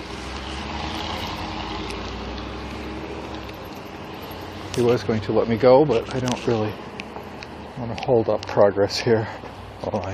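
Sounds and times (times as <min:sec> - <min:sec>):
large truck rumbling on the street: 0:00.0 - 0:08.5
speech: 0:04.8 - 0:07.0, 0:07.8 - 0:10.1.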